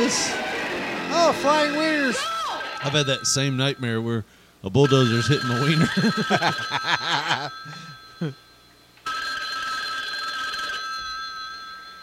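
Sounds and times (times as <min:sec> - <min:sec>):
speech: 0:00.0 - 0:00.4, 0:01.2 - 0:08.4
old telephone bell ringing: 0:02.7 - 0:12.0
laughter: 0:05.8 - 0:07.6.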